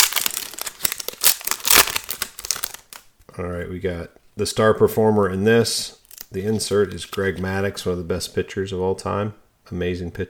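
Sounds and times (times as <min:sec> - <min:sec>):
foil pack of baseball cards being ripped open: 0:00.0 - 0:03.0
speech: 0:03.4 - 0:10.2.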